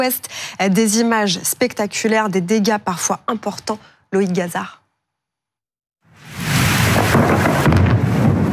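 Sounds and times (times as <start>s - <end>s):
speech: 0.0s - 4.8s
thunder rumbling during a storm: 6.3s - 8.5s.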